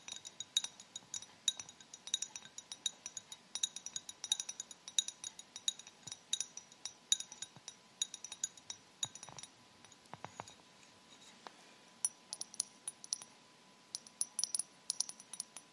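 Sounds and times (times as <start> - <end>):
tapping with rhinestone fingers on different surfaces: 0.0 - 10.5, 12.0 - 13.3, 14.0 - 15.7
faint steady tone: 0.0 - 15.7.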